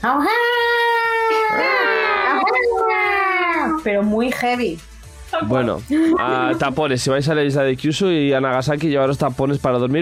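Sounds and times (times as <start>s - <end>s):
speech: 0.0s - 0.5s, 3.8s - 9.9s
person vocally imitating cats caterwauling at night: 0.0s - 3.8s
laughter: 1.4s - 3.8s, 5.9s - 6.8s.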